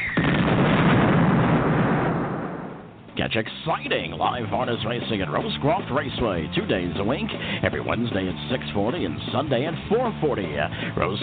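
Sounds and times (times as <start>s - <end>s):
firework explosion: 0.0s - 3.0s
dense rumbling crackle of fireworks: 0.0s - 3.2s
speech: 3.2s - 11.2s.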